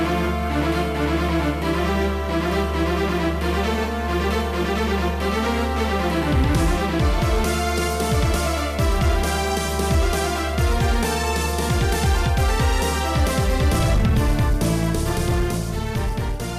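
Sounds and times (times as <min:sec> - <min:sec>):
Nintendo DS action game music: 0:00.0 - 0:16.5.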